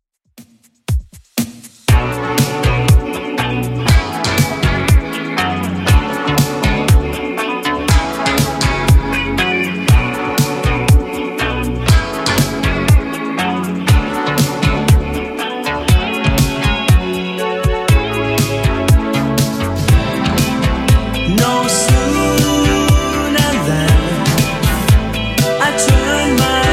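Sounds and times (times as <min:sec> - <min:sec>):
80s drum beat at 120 bpm: 0:00.3 - 0:07.2, 0:07.9 - 0:26.7.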